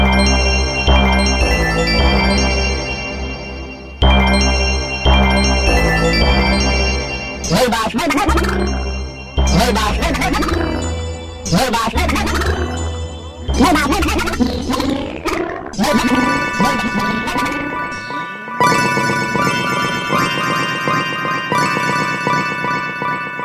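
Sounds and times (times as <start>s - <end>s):
chiming bell tones in an electronic composition: 0.0s - 15.1s, 15.8s - 23.4s
app-generated electronic composition of ringtone-style melodies: 0.0s - 23.4s
swooping warbling electronic tones: 7.9s - 21.0s.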